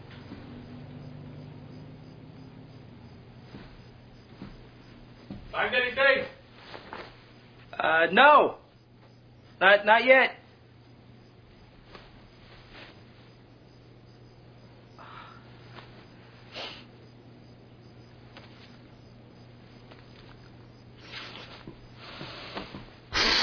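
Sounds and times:
faint steady low hum: 0:00.0 - 0:23.4
soft rustling: 0:03.4 - 0:05.6, 0:06.4 - 0:07.7, 0:11.4 - 0:13.4, 0:15.6 - 0:16.5, 0:18.3 - 0:18.9, 0:19.7 - 0:23.0
speech: 0:05.6 - 0:06.3, 0:07.8 - 0:08.6, 0:09.6 - 0:10.4
person sniffing women's underwear: 0:16.5 - 0:16.9, 0:21.0 - 0:23.4.

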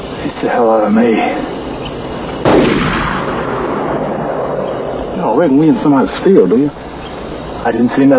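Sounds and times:
speech: 0:00.3 - 0:01.6, 0:05.2 - 0:06.9, 0:07.6 - 0:08.1
single gunshot fired across a field: 0:02.4 - 0:04.6.

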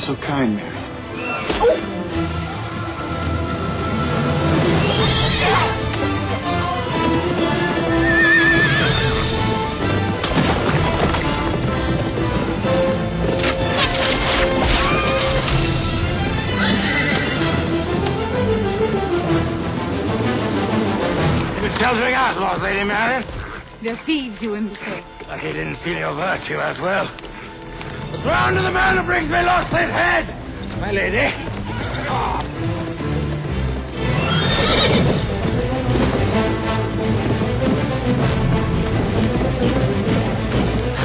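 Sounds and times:
speech: 0:00.1 - 0:00.7, 0:01.5 - 0:02.3, 0:21.7 - 0:27.3, 0:28.2 - 0:31.5, 0:32.1 - 0:32.5
hooves clip-clopping: 0:02.4 - 0:14.0, 0:14.6 - 0:18.9, 0:19.6 - 0:41.0
horse neighing: 0:07.7 - 0:09.3, 0:16.4 - 0:17.6, 0:34.0 - 0:35.3.

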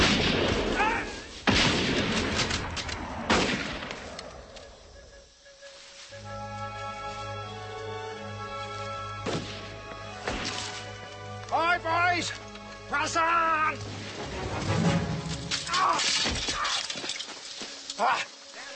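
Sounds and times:
gunshots in battle: 0:00.0 - 0:04.2
sustained tonal backdrop: 0:03.0 - 0:18.7.

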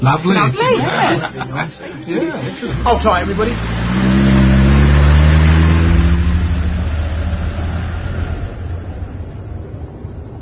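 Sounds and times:
speech: 0:00.0 - 0:04.2
laughter: 0:00.4 - 0:03.0
car engine revving and accelerating away: 0:02.1 - 0:10.3.

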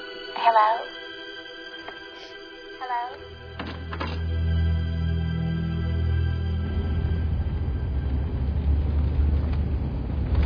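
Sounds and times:
speech: 0:00.5 - 0:00.9
car driving with a steady low engine rumble: 0:03.3 - 0:10.4.

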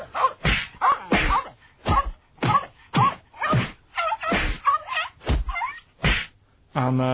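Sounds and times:
punching slap hits: 0:00.4 - 0:06.4
speech: 0:06.8 - 0:07.1.

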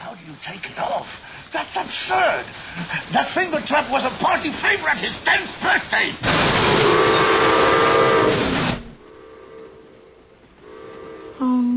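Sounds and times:
speech: 0:00.6 - 0:07.0
toy steam train whistle: 0:06.8 - 0:08.3, 0:09.1 - 0:11.6.

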